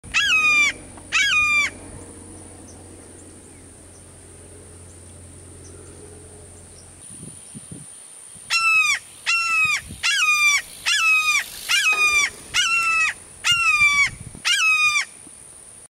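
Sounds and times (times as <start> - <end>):
red-shouldered hawk calling: 0.1 - 1.8, 8.5 - 15.1.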